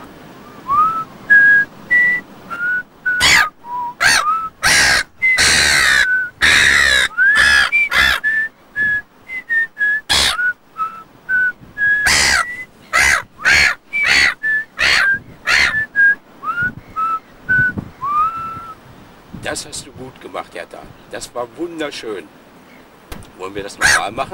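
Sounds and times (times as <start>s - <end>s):
person whistling a wandering tune: 0.4s - 4.5s, 7.2s - 12.7s, 15.8s - 18.8s
bird calling in loud harsh raspy bursts: 1.3s - 8.5s, 10.0s - 11.0s, 11.8s - 17.4s, 23.7s - 24.3s
speech: 21.1s - 22.4s, 23.6s - 24.3s.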